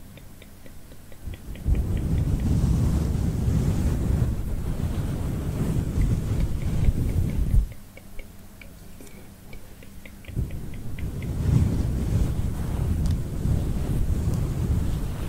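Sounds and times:
short rows of light evenly spaced ticks: 0.0 - 2.6, 6.0 - 11.4
head massage muffled rubbing: 0.0 - 8.3, 9.1 - 15.2.

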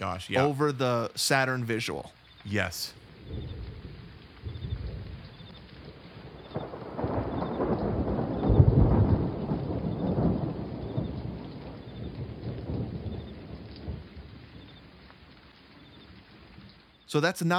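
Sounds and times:
speech: 0.0 - 3.6, 17.1 - 17.5
steady forest rain: 0.0 - 17.5
deep rumble of thunder: 2.6 - 17.0.

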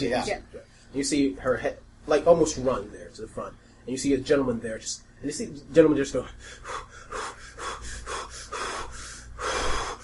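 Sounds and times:
speech: 0.0 - 7.3
voice imitating heavy breathing in: 6.5 - 10.0.

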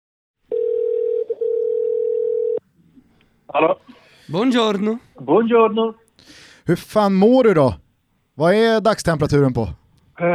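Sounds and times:
telephone ringback tone while placing a call: 0.5 - 2.6
faint noise: 0.5 - 10.3
speech: 3.5 - 7.8, 8.4 - 10.3.

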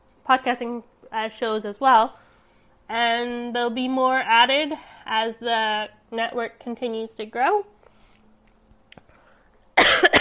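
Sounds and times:
faint small noises: 0.0 - 10.2
speech: 0.3 - 2.2, 2.9 - 7.7
person coughing from a tickle in the throat: 9.8 - 10.2.

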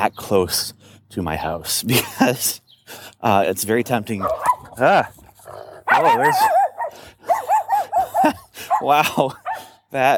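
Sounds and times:
speech: 0.0 - 5.2, 6.0 - 6.6, 8.2 - 10.1
laughter: 1.9 - 2.5, 7.7 - 9.6
dog on a leash barking loudly at a passing pedestrian on the sidewalk: 4.2 - 9.8.

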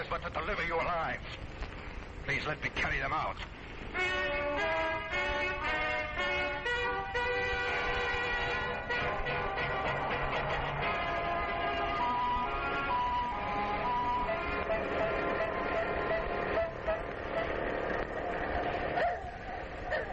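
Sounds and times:
steady engine rumble: 0.0 - 20.1
speech: 0.1 - 1.7, 2.3 - 5.2
car driving through busy street traffic in an industrial district of Paris: 1.3 - 20.1
car horns honking in Paris street traffic: 3.9 - 19.2.

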